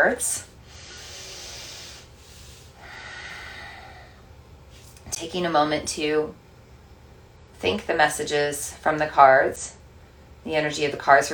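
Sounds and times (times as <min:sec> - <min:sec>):
speech: 0:00.0 - 0:00.5, 0:05.1 - 0:06.4, 0:07.6 - 0:09.8, 0:10.4 - 0:11.3
deep breath taken before a tarot card reading: 0:00.7 - 0:04.3.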